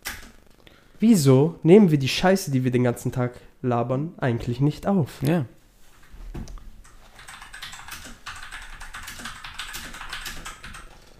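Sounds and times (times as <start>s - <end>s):
mechanical keyboard typing: 0.0s - 0.4s, 6.8s - 11.1s
speech: 1.0s - 5.6s.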